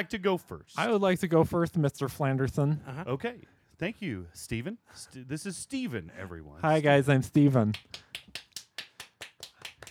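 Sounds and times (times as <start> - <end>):
speech: 0.0 - 8.4
single person clapping: 7.7 - 9.8.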